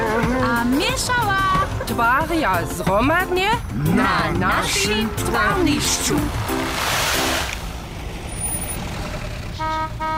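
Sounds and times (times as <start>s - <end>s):
heavy truck engine rumbling and idling: 0.0s - 10.1s
speech: 1.0s - 6.9s
heavy truck horn toots: 9.5s - 10.1s.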